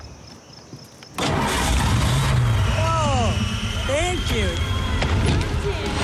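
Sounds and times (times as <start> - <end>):
car engine cranking with mechanical clicks and whirs: 1.2 - 6.0.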